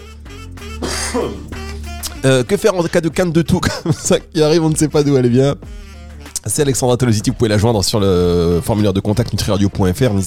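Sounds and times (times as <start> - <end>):
speech: 0.6 - 1.6, 2.2 - 10.2
person clearing throat: 0.8 - 1.6
laughter: 3.6 - 4.2.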